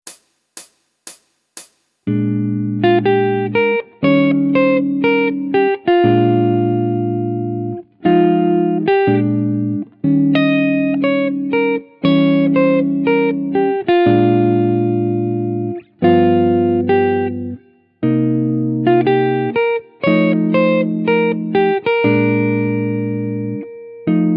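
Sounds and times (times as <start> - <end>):
jazz chord melody on guitar: 2.1 - 24.3.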